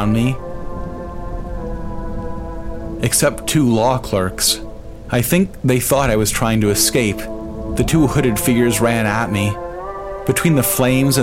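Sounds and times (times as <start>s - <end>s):
speech: 0.0s - 0.5s, 3.0s - 9.6s, 10.3s - 11.2s
faint low rumble: 0.0s - 11.2s
heavy rain drumming on surfaces: 0.0s - 11.2s
sustained tonal hum: 0.0s - 11.2s.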